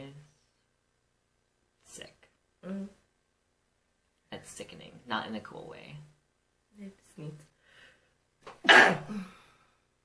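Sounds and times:
speech: 2.0 - 3.0, 4.5 - 6.1, 6.8 - 7.5, 8.6 - 9.4
sneeze: 8.6 - 9.3.

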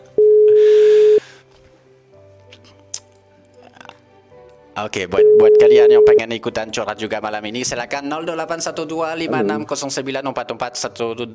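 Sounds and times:
telephone ringing tone: 0.2 - 1.2, 5.2 - 6.2
speech: 4.8 - 11.3.

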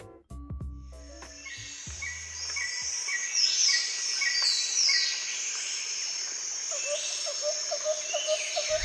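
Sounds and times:
birds chirping and whistling in Mexican tropical jungle near Guatemala border: 1.2 - 5.3, 6.7 - 8.8
shrill drone of insects in Mexican tropical jungle near Guatemala border: 1.3 - 8.8.

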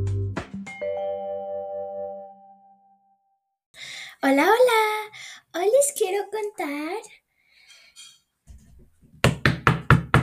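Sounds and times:
speech: 4.2 - 7.2
knocking on a door: 9.2 - 10.2.

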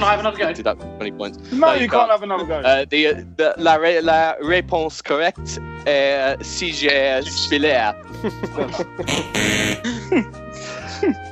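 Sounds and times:
speech: 0.0 - 10.4, 11.0 - 11.3
laughter: 8.1 - 11.2
quiz timer harsh buzzer: 9.0 - 9.9.

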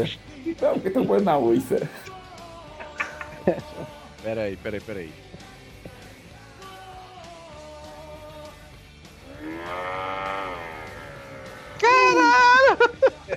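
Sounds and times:
speech: 0.0 - 2.1, 3.4 - 5.3
laughter: 2.8 - 4.0, 11.4 - 13.3
ox-like mooing bellow: 9.2 - 12.2.

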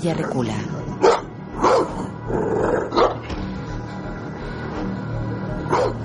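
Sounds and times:
speech: 0.0 - 3.0
large dog barking: 1.0 - 2.0, 5.7 - 6.0
large dog low rumbling growl: 1.0 - 3.2.

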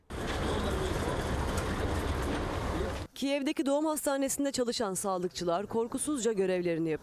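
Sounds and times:
crowded evacuation train in Ukraine rolling on rails: 0.1 - 3.1
speech: 3.2 - 7.0.

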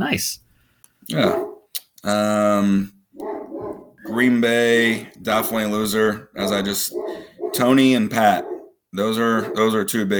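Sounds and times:
speech: 0.0 - 0.4, 1.0 - 1.4, 2.0 - 3.0, 4.1 - 10.1
dog barking and howling: 1.1 - 1.7, 3.2 - 10.1.

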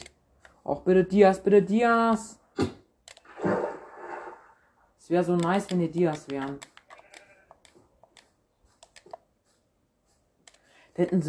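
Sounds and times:
speech: 0.7 - 2.8, 5.1 - 6.7, 11.0 - 11.2
sharp clicks: 3.0 - 3.3, 5.3 - 9.2, 10.4 - 10.7
goats bleating in a video game: 7.0 - 7.7.

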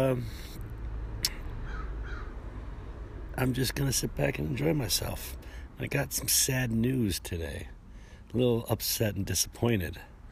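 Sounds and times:
speech: 0.0 - 0.5, 3.4 - 10.1
crow cawing in the distance: 1.6 - 2.4.

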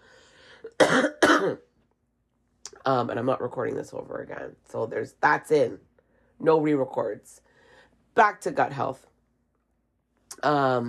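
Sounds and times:
person coughing harshly: 0.7 - 1.6
speech: 0.9 - 1.7, 2.8 - 7.4, 8.2 - 9.1, 10.3 - 10.8.

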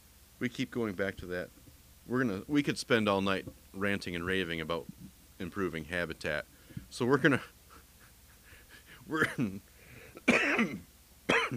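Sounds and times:
speech: 0.4 - 7.6, 9.1 - 9.7, 10.6 - 10.9
person coughing: 9.2 - 9.6, 10.2 - 11.5.

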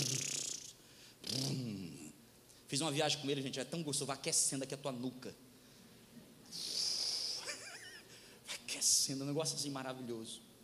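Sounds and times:
voice imitating a Volkswagen Beetle engine rumble: 0.0 - 2.1
speech: 2.7 - 5.4, 9.1 - 10.5.

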